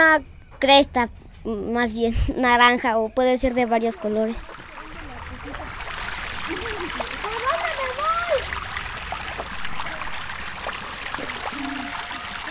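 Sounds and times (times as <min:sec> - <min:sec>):
voices murmuring: 0:00.0 - 0:12.4
speech: 0:00.2 - 0:04.6
faint splashing of people washing in a river: 0:03.4 - 0:12.4
river water trickling and flowing: 0:03.5 - 0:12.4.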